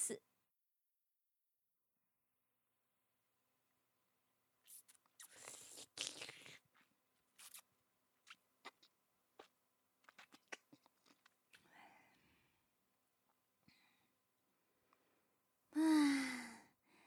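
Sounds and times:
wet mouth nibbling on an ear: 4.7 - 11.6
loud breathy voiced sigh: 15.8 - 17.0.

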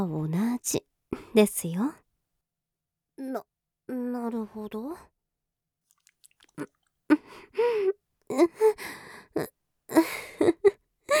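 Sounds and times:
speech: 0.0 - 2.0, 3.2 - 5.1, 6.6 - 11.1
baby suckling and drinking breast milk, voiced by a performer: 5.9 - 6.9.

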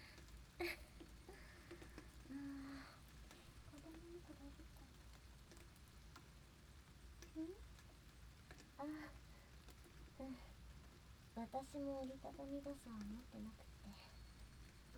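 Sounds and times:
steady rain pattering: 0.0 - 14.9
speech: 11.5 - 14.1.

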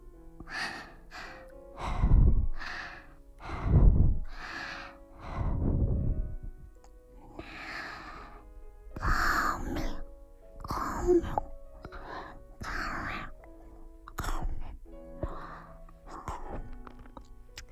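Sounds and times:
soft breaths blown into the ear: 0.0 - 17.7.

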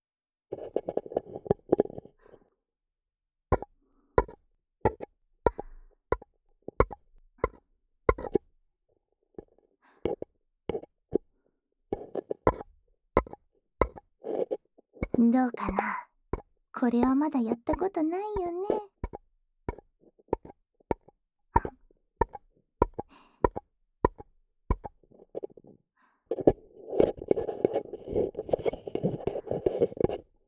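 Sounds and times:
hollow taps on paper cups held over the ears: 3.6 - 8.4, 10.1 - 10.9, 12.0 - 25.6, 26.3 - 30.3
speech: 15.2 - 16.0, 16.8 - 18.8.

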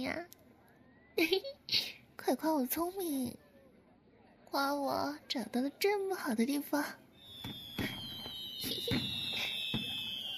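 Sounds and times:
speech: 0.0 - 0.4, 1.2 - 3.4, 4.5 - 7.0
fireworks exploding at a Mid-Autumn festival display: 7.2 - 10.3
high whistling tone: 7.2 - 10.3.

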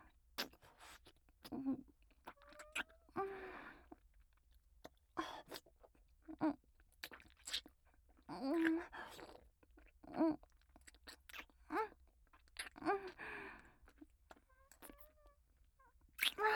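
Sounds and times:
wet mouth munching and smacking: 0.3 - 3.1, 3.7 - 15.4, 16.0 - 16.4.

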